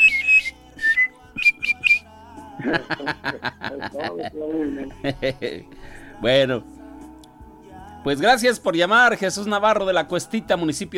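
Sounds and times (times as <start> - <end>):
person whistling short clear notes: 0.0 - 2.1
laughter: 2.6 - 5.7
speech: 2.6 - 6.8, 8.0 - 10.9.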